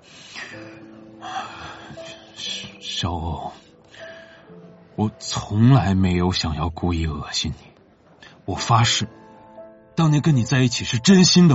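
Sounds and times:
man drawing a deep audible breath: 0:00.0 - 0:02.8, 0:03.6 - 0:04.7
faint steady tone: 0:00.0 - 0:11.5
speech: 0:00.5 - 0:01.7, 0:03.0 - 0:03.6, 0:05.0 - 0:07.7, 0:08.5 - 0:09.2, 0:10.0 - 0:11.5.

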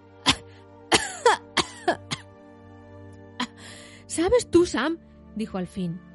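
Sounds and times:
person coughing and spluttering after near drowning: 0:00.2 - 0:02.3
speech: 0:04.2 - 0:06.1.

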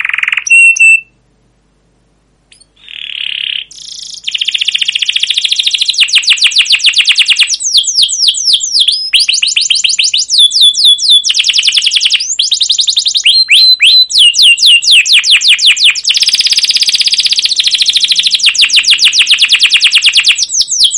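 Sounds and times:
canary song: 0:00.0 - 0:01.3, 0:02.4 - 0:20.9.

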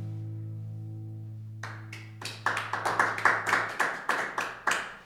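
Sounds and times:
three people clapping in a studio: 0:01.6 - 0:05.0.

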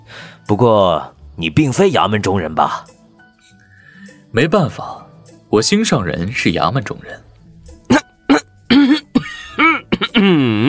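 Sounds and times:
speech: 0:00.5 - 0:03.0, 0:04.3 - 0:07.3, 0:10.2 - 0:10.6
man giving a deliberate pointed cough: 0:07.9 - 0:10.6.

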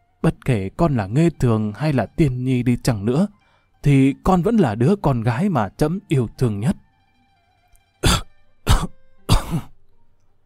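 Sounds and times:
speech: 0:00.5 - 0:06.8
old man's dry coughing fit: 0:08.0 - 0:09.8.

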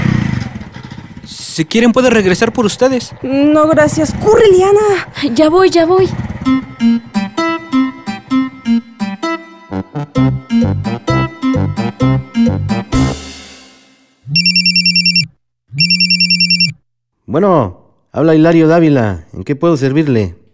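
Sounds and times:
speech: 0:01.6 - 0:07.2, 0:10.0 - 0:10.9, 0:17.3 - 0:20.4
music: 0:06.4 - 0:14.2
telephone ringing with a bright electronic warbling ringtone: 0:14.4 - 0:16.7.

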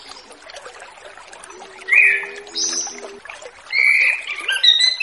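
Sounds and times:
orange-headed thrush delivering jumbled warbling whistle phrases and high sliding notes: 0:01.3 - 0:05.0.

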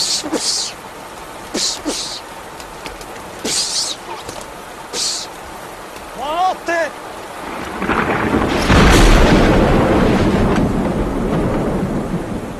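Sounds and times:
heavy rain during a storm at night: 0:00.0 - 0:12.5
thunder from a lightning strike during a night storm: 0:07.4 - 0:12.5.

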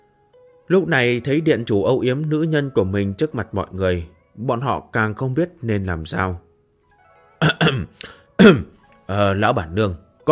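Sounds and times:
speech: 0:00.7 - 0:06.4, 0:07.4 - 0:10.3
carpenter giving short dry coughs as a warning: 0:07.4 - 0:08.8.

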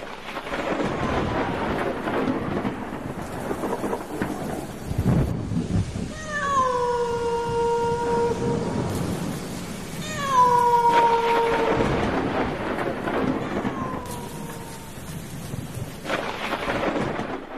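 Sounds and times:
heavy thunder rumble: 0:00.0 - 0:17.5
rain outside a dilapidated, leaking house: 0:00.0 - 0:17.5
drawn-out wailing cat-like cry: 0:06.1 - 0:09.0, 0:10.0 - 0:12.6, 0:13.3 - 0:15.2.

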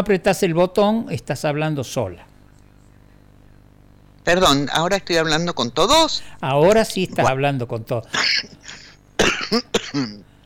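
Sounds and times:
speech: 0:00.0 - 0:02.3, 0:04.2 - 0:08.6, 0:09.2 - 0:10.3
woman coughing: 0:08.1 - 0:10.3.

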